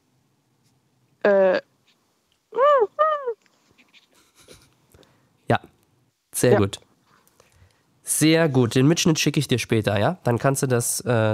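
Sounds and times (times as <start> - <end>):
person imitating a seagull call with their voice: 2.6 - 3.4
speech: 6.4 - 6.8, 8.2 - 11.3.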